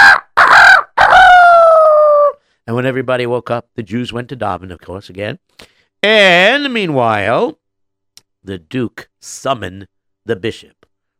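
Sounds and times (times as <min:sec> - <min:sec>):
rooster crowing: 0:00.0 - 0:02.4
speech: 0:02.8 - 0:07.6, 0:08.4 - 0:10.9.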